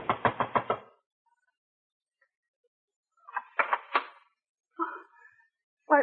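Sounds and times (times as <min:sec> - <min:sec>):
knocking on a front door by a neighbor: 0:00.0 - 0:00.8.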